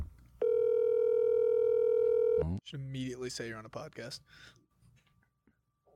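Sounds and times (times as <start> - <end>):
steady single-pitched electronic telephone tone on a call: 0.4 - 2.5
speech: 2.4 - 4.6.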